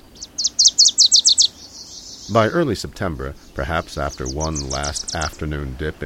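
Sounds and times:
Wilson's Warbler high sharp chips: 0:00.0 - 0:02.6, 0:03.2 - 0:05.5
speech: 0:02.3 - 0:06.0.

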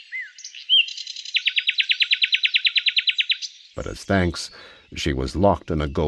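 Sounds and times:
nightingale singing: 0:00.0 - 0:06.0
speech: 0:03.8 - 0:06.0.

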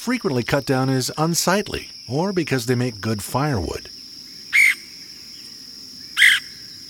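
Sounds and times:
speech: 0:00.0 - 0:04.0
red-headed woodpecker call: 0:04.0 - 0:06.8.

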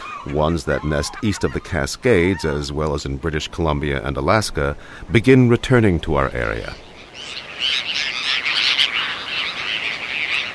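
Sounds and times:
Bonaparte's gull flock calling: 0:00.0 - 0:02.7, 0:06.6 - 0:10.5
speech: 0:00.2 - 0:07.9.

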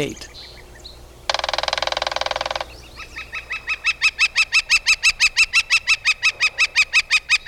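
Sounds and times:
speech: 0:00.0 - 0:00.3
young northern flicker fledgling rapid repeated calls: 0:00.0 - 0:07.4
young northern flicker fledgling giving a harsh buzzy rasp: 0:01.2 - 0:07.4.

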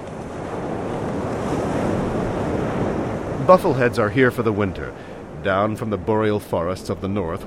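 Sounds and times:
continuous rush of ocean surf: 0:00.0 - 0:07.4
wind blowing across ocean surf: 0:00.0 - 0:07.4
speech: 0:03.5 - 0:07.4.

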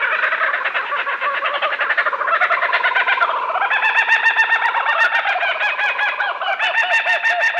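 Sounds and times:
laughing kookaburras cackling in a raucous chorus: 0:00.0 - 0:07.5.

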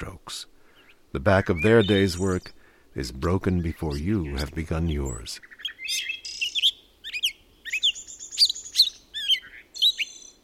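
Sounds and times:
bright varied birdsong of chirps trills and whistled phrases: 0:00.0 - 0:10.4
speech: 0:01.1 - 0:06.1.

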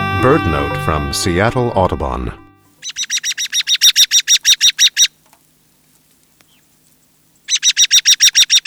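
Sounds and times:
speech: 0:00.2 - 0:03.0
American robin calls: 0:02.7 - 0:08.6.

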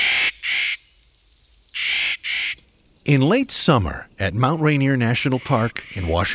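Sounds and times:
Clark's Nutcracker giving harsh grating calls: 0:00.0 - 0:00.9, 0:01.8 - 0:02.6, 0:05.2 - 0:06.3
speech: 0:03.1 - 0:06.3.

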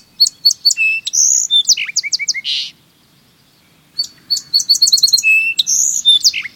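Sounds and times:
song sparrow singing: 0:00.0 - 0:06.5.

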